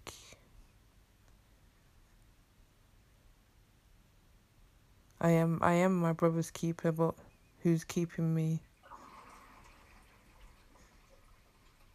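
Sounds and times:
speech: 5.2s - 8.7s
water pouring out of a glass: 8.8s - 11.9s.

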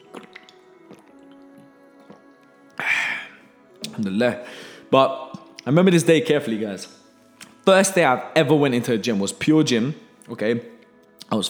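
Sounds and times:
quiet sip and gulp from a protein shake bottle: 0.0s - 5.7s
sudden loud breathy exhale after drinking: 2.8s - 3.5s, 4.4s - 5.0s
speech: 4.0s - 7.0s, 7.6s - 10.7s, 11.3s - 11.4s.

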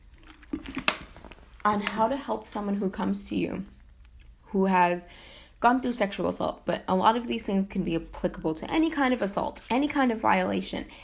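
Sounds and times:
plastic water bottle squeezed: 0.0s - 1.6s
plastic water bottle crinkling: 0.0s - 2.0s
speech: 1.6s - 3.8s, 4.5s - 11.0s.

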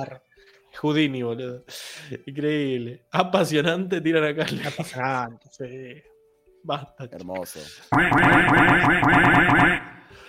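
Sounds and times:
speech: 0.0s - 9.9s
repeated overlapping duck quacks: 7.9s - 10.0s.

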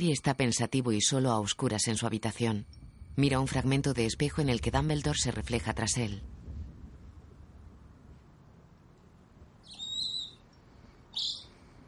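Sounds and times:
speech: 0.0s - 6.4s
low rumble: 0.2s - 11.8s
caged owl screeching: 9.6s - 10.4s, 11.1s - 11.5s.

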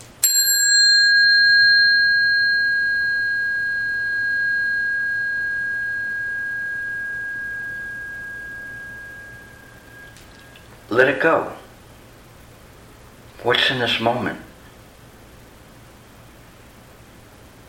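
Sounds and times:
bell ringing: 0.2s - 10.7s
speech: 11.0s - 11.6s, 13.4s - 14.5s.

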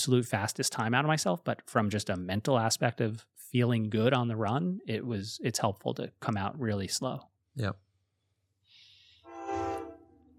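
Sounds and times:
speech: 0.0s - 7.8s
train horn blasting: 9.2s - 10.3s.

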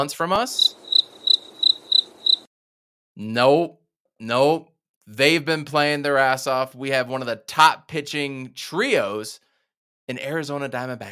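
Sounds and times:
speech: 0.0s - 0.8s, 3.2s - 9.4s, 10.1s - 11.1s
crickets chirping in a steady high trill: 0.6s - 2.5s.

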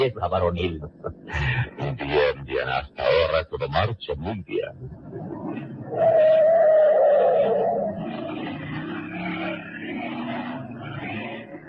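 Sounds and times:
speech: 0.0s - 6.7s
small car engine revving and accelerating away through empty streets: 5.2s - 11.6s.

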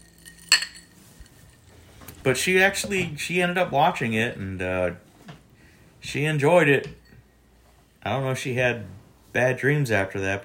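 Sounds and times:
glasses clinking in a toast: 0.0s - 1.8s, 6.9s - 7.3s
speech: 2.2s - 5.1s, 6.1s - 7.0s, 8.0s - 10.4s.

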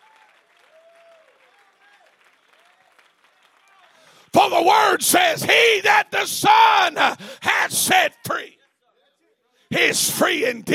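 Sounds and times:
audience applauding: 0.0s - 4.4s
speech: 4.3s - 8.6s, 9.7s - 10.7s.

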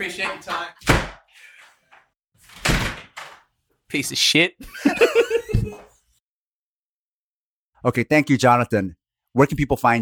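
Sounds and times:
speech: 0.0s - 0.9s, 3.9s - 5.9s, 7.8s - 10.0s
door swinging shut with a heavy thud: 2.5s - 3.4s
laughter: 4.6s - 5.9s.

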